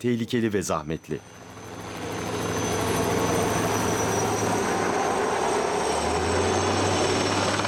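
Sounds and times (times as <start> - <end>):
speech: 0.0 - 1.5
helicopter flying carrying a heavy load: 0.0 - 7.6.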